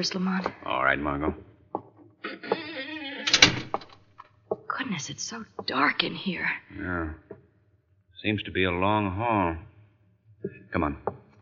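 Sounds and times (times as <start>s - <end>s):
speech: 0.0s - 1.5s, 4.8s - 7.4s, 8.2s - 9.7s, 10.4s - 11.2s
house door creaking open: 1.8s - 4.3s
house door clatter: 2.3s - 4.2s.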